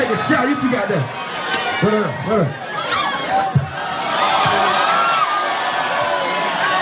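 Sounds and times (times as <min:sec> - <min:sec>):
rowdy house party crowd shouting and cheering: 0:00.0 - 0:06.7
speech: 0:00.1 - 0:02.7
people whooping: 0:02.8 - 0:06.7.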